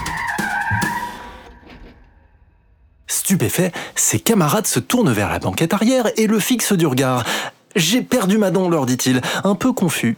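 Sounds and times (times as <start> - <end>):
car tires screeching while braking hard on a snowy street: 0.0 - 2.2
speech: 3.3 - 10.1.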